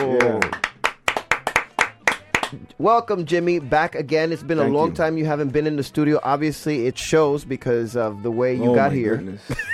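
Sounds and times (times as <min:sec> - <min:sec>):
crisp hand clapping from a few people in a studio: 0:00.0 - 0:02.8
speech: 0:02.5 - 0:09.7.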